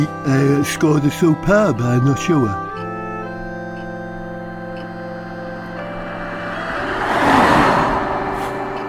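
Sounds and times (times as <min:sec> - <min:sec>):
speech: 0:00.0 - 0:02.7
single car driving past outdoors: 0:05.4 - 0:08.8.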